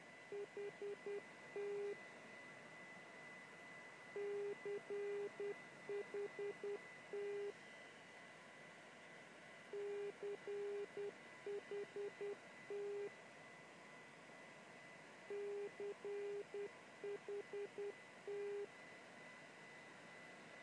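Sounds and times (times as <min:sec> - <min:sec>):
non directional beacon broadcasting callsign in morse code on 277 kHz: 0:00.4 - 0:02.0, 0:04.2 - 0:07.5, 0:09.8 - 0:13.1, 0:15.3 - 0:18.7.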